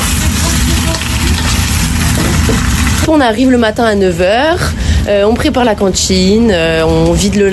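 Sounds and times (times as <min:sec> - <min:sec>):
potatoes sautéing in a hot pan in a kitchen: 0:00.0 - 0:03.1
speech: 0:03.1 - 0:07.5.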